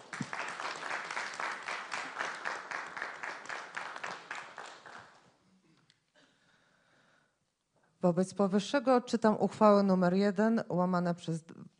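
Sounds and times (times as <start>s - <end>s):
people applauding at a town council session: 0.0s - 5.4s
speech: 8.0s - 11.6s.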